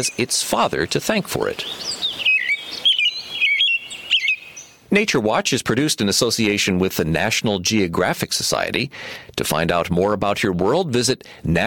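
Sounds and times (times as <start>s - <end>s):
speech: 0.0s - 2.3s, 4.9s - 11.6s
American robin singing: 0.0s - 5.0s, 6.4s - 8.1s.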